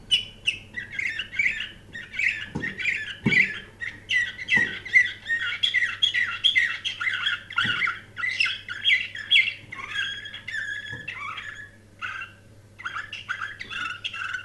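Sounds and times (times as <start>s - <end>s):
canary singing in chattering and rolling phrases: 0.0s - 14.4s.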